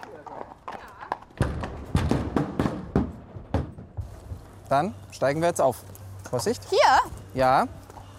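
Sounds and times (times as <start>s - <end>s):
mounted police horse hooves clopping on a hard surface in a Munich park: 0.0s - 6.5s
outdoor ambience in the Englischer Garten park in Munich, Germany: 0.0s - 8.1s
speech: 4.7s - 7.8s.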